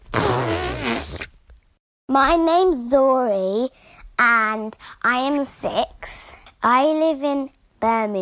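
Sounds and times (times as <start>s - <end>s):
child blowing a loud wet buzzing raspberry imitating a farting whale: 0.1s - 1.3s
speech: 2.1s - 8.2s.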